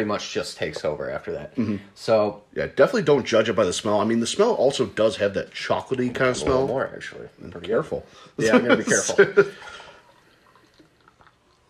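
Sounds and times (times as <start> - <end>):
speech: 0.0 - 9.7
laughter: 8.4 - 9.7
drink pouring into a glass: 8.9 - 11.6
faint drips and trickles of spilled drink: 9.0 - 11.6.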